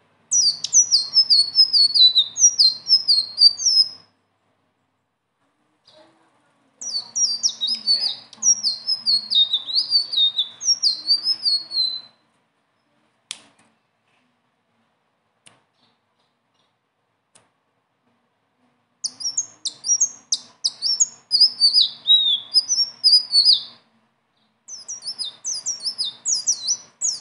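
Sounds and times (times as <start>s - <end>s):
leafbird singing: 0.3s - 4.1s, 6.8s - 12.2s, 19.0s - 27.1s
faint clicks: 15.4s - 17.6s.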